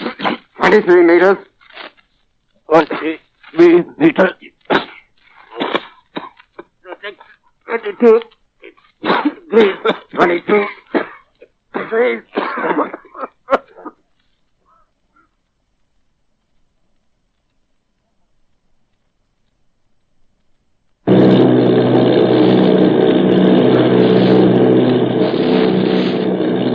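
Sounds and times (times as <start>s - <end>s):
person clearing throat: 0.0s - 0.9s, 4.4s - 14.0s
speech: 0.7s - 1.5s, 2.7s - 4.8s, 7.0s - 8.4s, 9.0s - 11.1s, 11.8s - 13.3s
bomber plane engines droning in flight: 21.1s - 26.7s.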